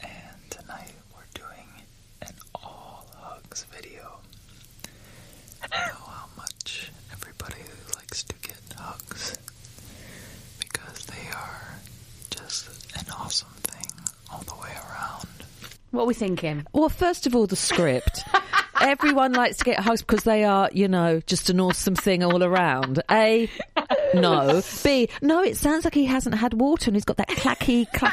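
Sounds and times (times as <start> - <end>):
soft ASMR whispering: 0.0 - 4.2, 5.6 - 9.5, 10.6 - 15.6, 24.1 - 25.3
speech: 15.9 - 28.1
laughter: 17.7 - 20.4, 21.5 - 24.8, 27.3 - 28.1.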